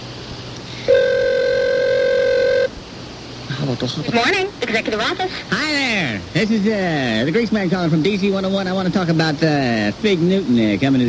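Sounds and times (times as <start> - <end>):
buzzing telephone line tone from a speed dialer: 0.7 - 2.8
phone-line sounds: 0.9 - 2.7
speech: 3.7 - 11.0.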